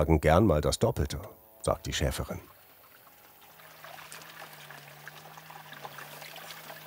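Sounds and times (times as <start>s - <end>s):
speech: 0.0s - 2.5s
water pouring into a sheep trough: 2.4s - 6.8s.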